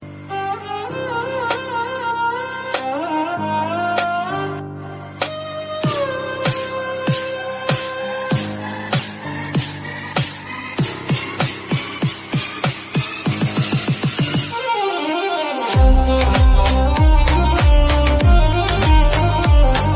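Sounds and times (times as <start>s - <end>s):
Tamil background music ringtone: 0.0s - 19.9s.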